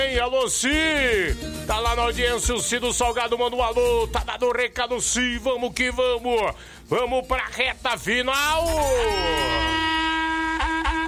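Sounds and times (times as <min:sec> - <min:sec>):
speech: 0:00.2 - 0:09.6
berrante cattle horn being blown: 0:09.1 - 0:11.0.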